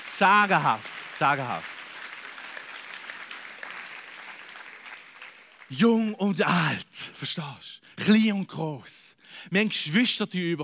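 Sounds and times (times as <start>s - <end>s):
audience applause: 0.0s - 6.1s
speech: 0.2s - 1.7s, 5.7s - 10.6s.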